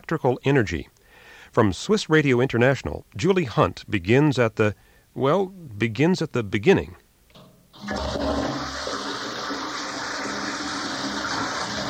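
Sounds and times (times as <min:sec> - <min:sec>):
speech: 0:00.1 - 0:00.9, 0:01.5 - 0:07.0
toilet flushing: 0:07.8 - 0:11.8.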